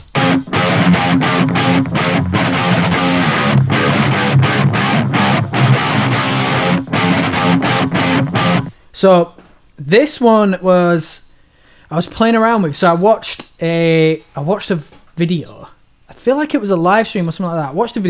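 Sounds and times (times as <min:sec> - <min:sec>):
electric guitar strummed through a split-coil neck pickup: 0:00.0 - 0:08.7
speech: 0:09.0 - 0:11.2, 0:11.9 - 0:18.0.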